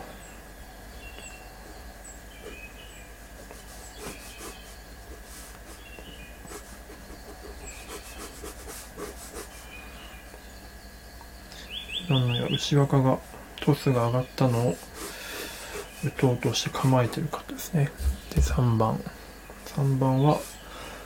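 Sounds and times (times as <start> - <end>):
faint steady hum: 0.0 - 21.0
pen or pencil drawing pictures on paper: 3.3 - 9.8, 14.4 - 18.5
speech: 12.1 - 14.9, 16.0 - 19.1, 19.8 - 20.5.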